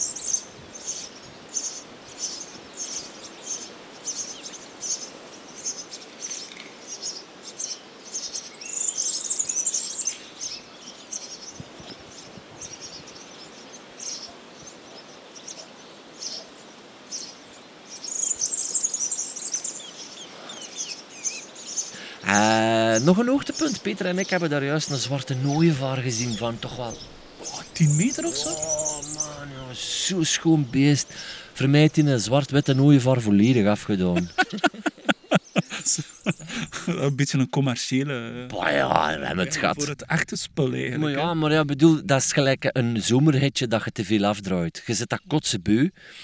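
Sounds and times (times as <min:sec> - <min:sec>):
European serin singing: 0:00.0 - 0:14.7, 0:16.2 - 0:33.6, 0:34.4 - 0:36.5
insects chirping outdoors: 0:00.0 - 0:37.0
laughter: 0:21.9 - 0:37.4, 0:38.1 - 0:41.5
speech: 0:23.0 - 0:27.2, 0:27.8 - 0:28.8, 0:30.1 - 0:34.8, 0:36.9 - 0:46.2.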